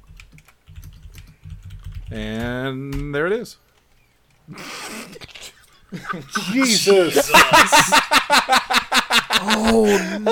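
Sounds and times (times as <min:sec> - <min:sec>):
typing on a computer keyboard: 0:00.0 - 0:03.1
speech: 0:02.1 - 0:03.6, 0:04.5 - 0:04.8, 0:06.1 - 0:08.8, 0:09.4 - 0:10.2
laughter: 0:04.5 - 0:10.2.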